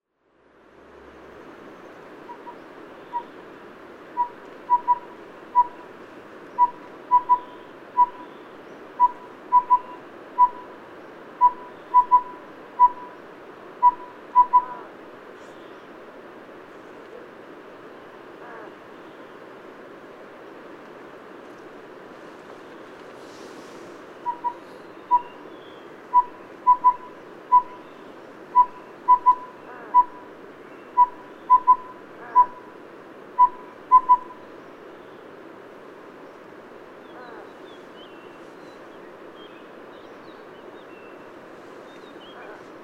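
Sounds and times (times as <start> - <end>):
collared owlet Glaucidium brodiei calling: 2.2 - 3.4, 4.1 - 5.9, 6.5 - 8.4, 9.0 - 10.8, 11.4 - 13.2, 13.8 - 14.9, 23.2 - 32.8, 33.4 - 34.5.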